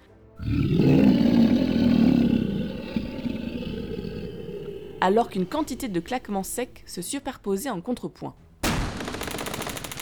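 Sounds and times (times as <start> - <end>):
deep powerful roar resounding through a house: 0.4 - 7.0
speech: 5.0 - 8.4.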